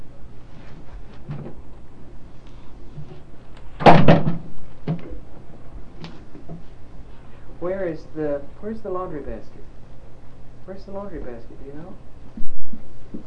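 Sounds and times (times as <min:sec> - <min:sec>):
bathroom door bumped with a loud thud: 0:03.8 - 0:05.0
speech: 0:08.0 - 0:09.8, 0:10.7 - 0:12.1.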